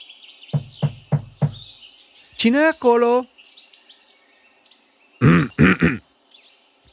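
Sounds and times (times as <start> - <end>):
faint birds chirping: 0.1 - 6.7
firm knocking on a wooden door: 0.6 - 1.7
speech: 2.4 - 3.3.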